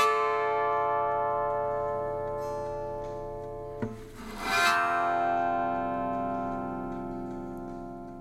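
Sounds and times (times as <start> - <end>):
guitar in DADGAD tuning played with a bow holding a sustained chord: 0.0 - 8.2.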